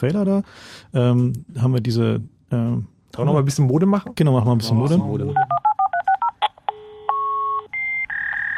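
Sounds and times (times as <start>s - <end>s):
speech: 0.0s - 5.7s
modem dialing a telephone number with DTMF beeps: 5.3s - 8.5s.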